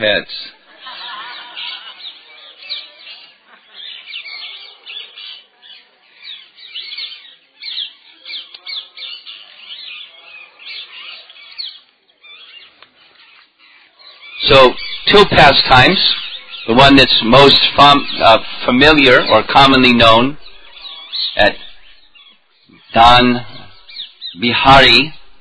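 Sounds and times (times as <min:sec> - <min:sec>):
speech: 0:00.0 - 0:01.0, 0:14.5 - 0:20.4, 0:21.4 - 0:21.6, 0:22.9 - 0:23.5, 0:24.4 - 0:25.2
chorus of many birds squawking and chattering in a tree overhead: 0:00.0 - 0:25.3
laughter: 0:00.5 - 0:04.8.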